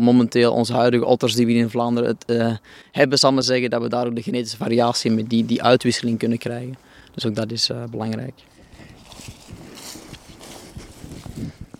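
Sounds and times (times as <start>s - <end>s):
speech: 0.0s - 8.5s
footsteps crunching along an outdoor path in a nature reserve: 8.4s - 11.7s.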